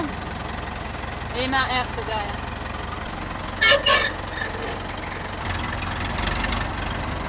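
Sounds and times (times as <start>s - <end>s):
old tractor engine chugging: 0.0s - 7.2s
speech: 1.4s - 2.5s
metallic clanks: 3.6s - 5.7s.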